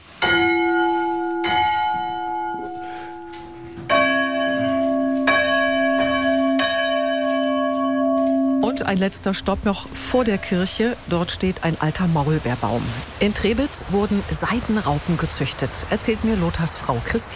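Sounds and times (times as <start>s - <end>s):
small church bell ringing: 0.1s - 11.0s
speech: 8.9s - 17.3s.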